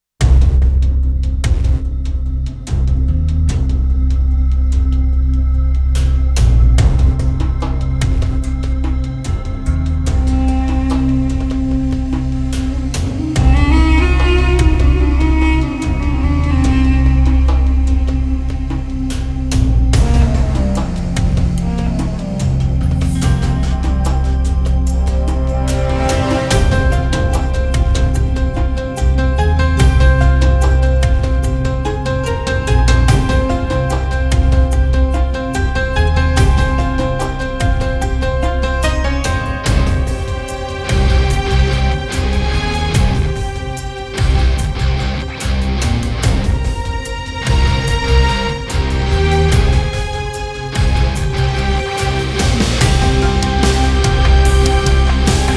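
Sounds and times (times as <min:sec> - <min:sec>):
hybrid ethnic orchestral music: 0:00.2 - 0:55.5.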